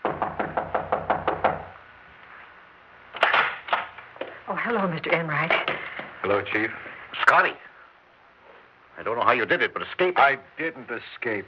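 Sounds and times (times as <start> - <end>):
knocking on a door: 0.0 - 1.8
speech: 4.6 - 7.7, 9.0 - 11.4.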